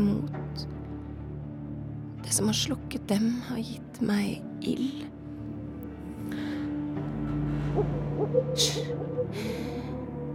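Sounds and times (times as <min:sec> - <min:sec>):
low steady droning background: 0:00.0 - 0:10.3
speech: 0:02.3 - 0:05.2, 0:07.8 - 0:09.9
owl screeching at night: 0:07.8 - 0:10.3.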